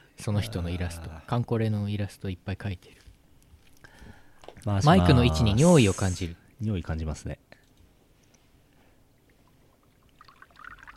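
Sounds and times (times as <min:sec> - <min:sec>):
low hiss: 0:00.0 - 0:10.9
speech: 0:00.2 - 0:03.1, 0:04.6 - 0:07.5
liquid trickling as it is poured: 0:09.2 - 0:10.9.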